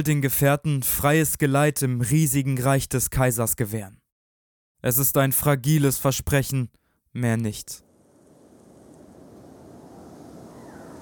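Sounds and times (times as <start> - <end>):
speech: 0.0 - 4.0, 4.8 - 7.8
strong storm wind roaring and whipping up sand: 7.9 - 11.0.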